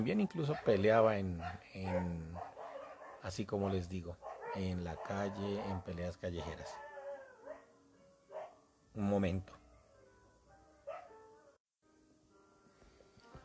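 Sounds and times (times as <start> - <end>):
speech: 0.0 - 2.6, 3.2 - 6.8, 9.0 - 9.6
dogs barking and snarling in a street fight: 0.5 - 7.7, 8.3 - 8.6
dogs yelping: 1.4 - 3.3, 4.2 - 7.7, 8.3 - 8.6, 10.9 - 11.1.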